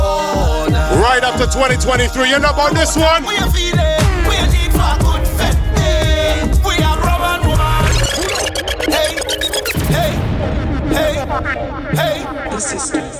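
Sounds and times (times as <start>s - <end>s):
upbeat song intro with punchy percussion and layered tones: 0.0s - 13.1s
sustained wash of synth chords: 0.7s - 13.1s
speech: 1.2s - 4.0s, 11.0s - 13.1s.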